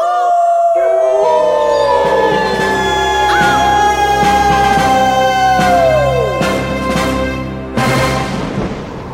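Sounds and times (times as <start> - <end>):
pack of hungry wolves howling in China: 0.0 - 6.5
steady low rhythmic pulse: 0.9 - 8.0.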